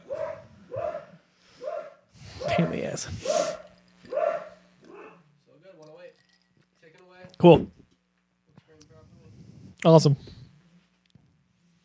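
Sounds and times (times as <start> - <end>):
dog barking while being walked: 0.0 - 5.3
speech: 2.6 - 3.6, 7.4 - 7.8, 9.8 - 10.3.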